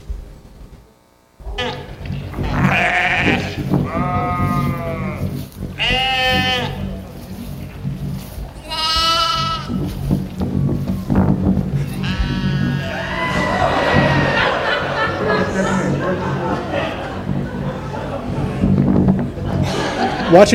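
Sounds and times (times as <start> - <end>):
low rumble: 0.0 - 20.5
sheep bleating: 1.4 - 7.8, 8.6 - 10.0, 11.8 - 14.4
laughter: 11.6 - 20.5
speech: 20.4 - 20.5.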